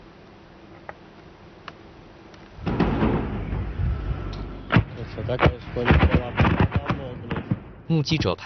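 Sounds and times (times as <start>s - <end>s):
violent explosions as drones strike a building in Tambov region, western Russia: 2.6s - 8.3s.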